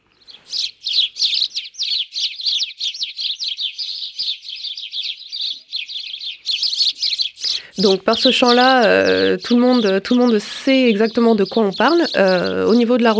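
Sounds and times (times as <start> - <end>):
house sparrow chirping: 0.0 - 13.1
speech: 7.8 - 13.1.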